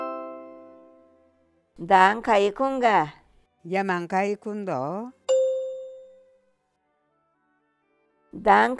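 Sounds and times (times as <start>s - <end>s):
bright chime ringing: 0.0s - 0.8s, 5.3s - 6.2s
speech: 1.8s - 5.2s, 8.4s - 8.7s.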